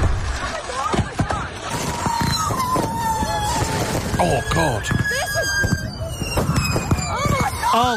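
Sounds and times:
unsecured fireworks on work property exploding out of control: 0.0s - 7.9s
people shouting and exclaiming: 1.7s - 5.5s, 6.9s - 7.9s
fireworks whistling squeals: 1.7s - 7.9s
speech: 4.2s - 5.0s, 7.7s - 7.9s.

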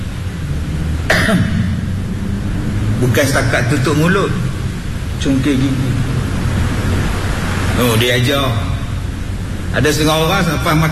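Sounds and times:
steady low hum: 0.0s - 10.9s
person coughing and clearing throat: 1.1s - 1.7s
speech: 1.3s - 1.7s, 3.0s - 4.5s, 5.2s - 6.1s, 7.8s - 8.7s, 9.7s - 10.9s.

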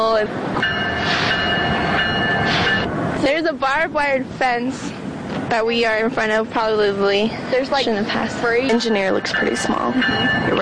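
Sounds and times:
train rolling along railroad tracks: 0.0s - 10.6s
speech: 0.2s - 0.4s, 3.4s - 4.9s, 5.5s - 10.6s
thin metallic whine: 0.6s - 3.0s, 7.8s - 10.6s.

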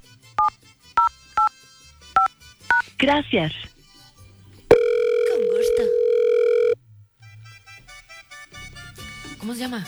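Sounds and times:
speech: 3.0s - 3.7s, 9.5s - 9.8s
telephone keypad dialing tones: 4.7s - 6.8s.

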